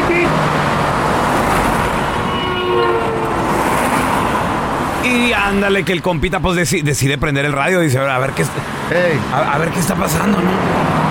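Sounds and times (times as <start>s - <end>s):
car horn honks: 0.0s - 0.4s, 2.0s - 3.7s
roar of passing traffic: 0.0s - 5.9s, 7.5s - 11.0s
speech: 5.5s - 11.0s.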